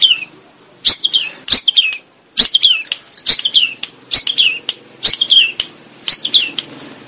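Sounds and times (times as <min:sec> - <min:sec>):
sooty-headed bulbul chirping: 0:00.0 - 0:07.0
sooty-headed bulbul sharp clicks: 0:01.8 - 0:05.8.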